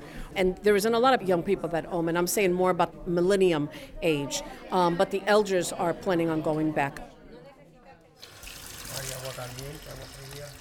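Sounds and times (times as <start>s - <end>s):
speech: 0.4s - 7.1s, 9.4s - 10.5s
water running from a kitchen faucet: 8.2s - 10.5s.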